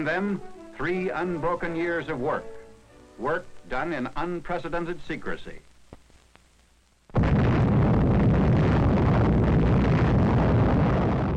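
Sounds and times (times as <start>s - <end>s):
speech: 0.0s - 2.6s, 3.2s - 5.7s
faint clicks: 5.6s - 7.0s
atomic bomb explosion roar at a desert test site in New Mexico: 7.1s - 11.3s.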